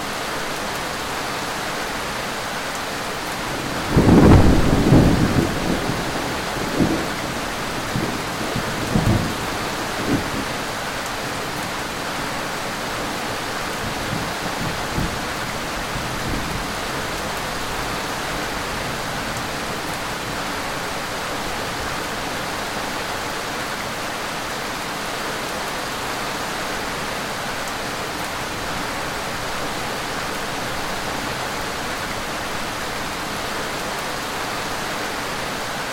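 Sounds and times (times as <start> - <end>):
steady rain: 0.0 - 35.9
rumble of thunder: 3.5 - 10.5.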